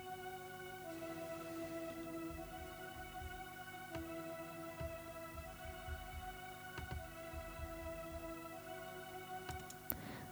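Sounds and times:
soft synthesizer pad holding a sustained chord in a song intro: 0.0 - 10.3
faint low thumps and clicks: 1.8 - 8.5.

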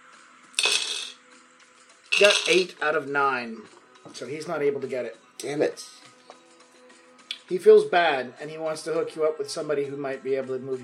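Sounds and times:
handful of dice clattering onto a hard surface: 0.6 - 1.2, 2.1 - 2.8
speech: 2.2 - 6.1, 7.5 - 10.8.

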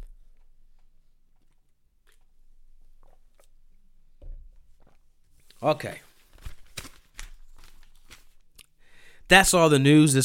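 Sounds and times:
person sipping water: 0.8 - 3.9
speech: 5.6 - 6.1, 9.3 - 10.2.

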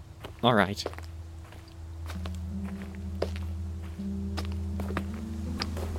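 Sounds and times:
several people's footsteps crunching while carrying a stretcher into a cave: 0.0 - 5.9.

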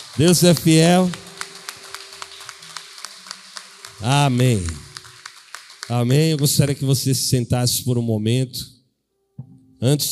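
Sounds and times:
audience clapping in unison: 0.0 - 7.3
speech: 0.2 - 1.2, 4.0 - 4.9, 5.9 - 8.8, 9.8 - 10.1.

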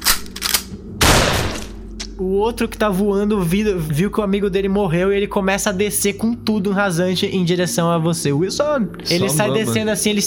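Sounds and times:
12-gauge shotgun blast: 1.0 - 1.8
speech: 2.2 - 10.2.

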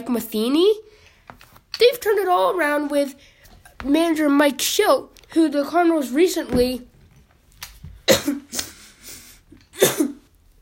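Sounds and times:
speech: 0.0 - 6.9, 9.8 - 10.0
sharp breathy sneezes: 8.1 - 10.2.

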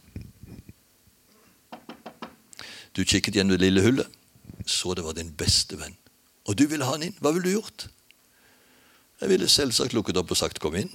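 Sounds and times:
firm knocks on a door: 1.7 - 2.4
speech: 2.9 - 8.0, 9.2 - 10.9.

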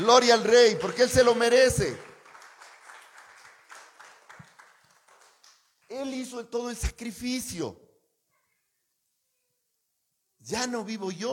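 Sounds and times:
speech: 0.0 - 2.1, 5.9 - 7.8, 10.4 - 11.3
crowd at a religious service applauding: 0.0 - 6.1.

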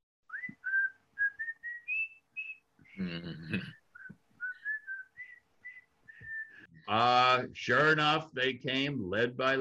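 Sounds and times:
large group whistling a march tune: 0.3 - 2.6, 4.0 - 6.7
speech: 3.0 - 3.8, 6.9 - 9.5.

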